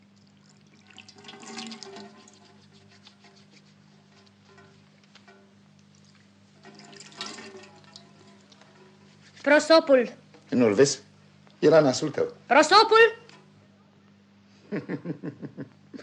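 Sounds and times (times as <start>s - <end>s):
water being poured: 0.0s - 9.5s
speech: 9.4s - 13.2s, 14.7s - 16.0s
laughter: 14.7s - 16.0s.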